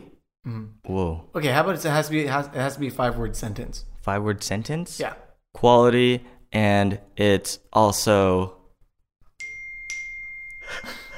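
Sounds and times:
speech: 0.4s - 0.8s, 1.4s - 8.6s
phone notification chime: 9.4s - 11.1s.

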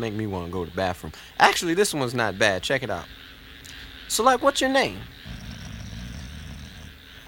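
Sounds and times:
speech: 0.0s - 3.3s, 4.1s - 5.2s
faint hiss: 0.0s - 7.2s
dog growling: 5.0s - 7.2s.

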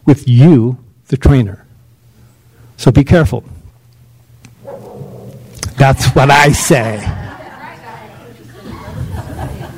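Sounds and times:
speech: 0.0s - 1.6s, 2.8s - 3.6s, 5.8s - 7.2s
steady low hum: 0.0s - 9.7s
dog barking: 4.6s - 5.5s
laughter: 5.9s - 9.7s.

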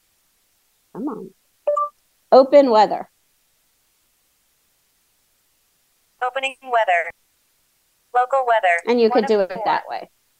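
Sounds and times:
speech: 1.0s - 1.4s, 2.3s - 3.1s, 6.2s - 7.2s, 8.1s - 10.2s
phone two-tone chime signaling voice dictation: 1.7s - 1.9s.

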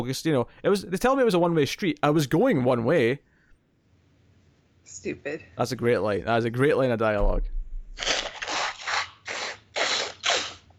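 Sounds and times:
speech: 0.0s - 3.3s, 4.9s - 8.1s
person with bad allergies blowing nose: 8.0s - 10.7s.

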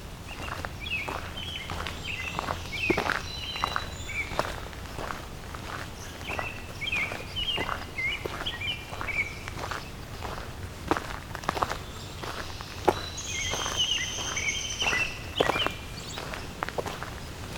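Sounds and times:
footsteps crunching on the ground: 0.0s - 17.5s
American robin singing short clear whistled phrases: 0.3s - 4.6s, 5.9s - 10.4s, 11.7s - 16.6s.

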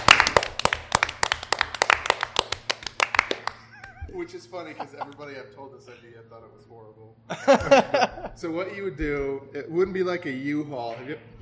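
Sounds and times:
group of people clapping together: 0.0s - 4.2s
laughter: 3.6s - 5.3s, 7.3s - 8.4s
speech: 4.3s - 11.3s.

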